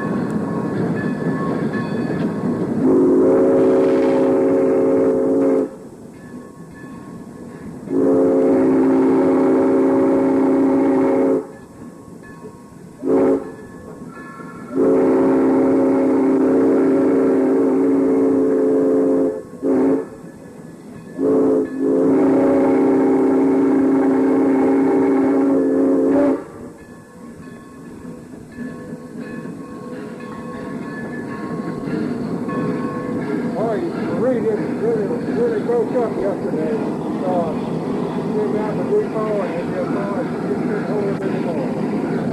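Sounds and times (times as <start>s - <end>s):
rumbling rail noise: 0.0s - 42.3s
steam train whistle blasts: 2.8s - 5.8s, 7.9s - 11.6s, 13.0s - 13.6s, 14.7s - 20.3s, 21.2s - 26.7s.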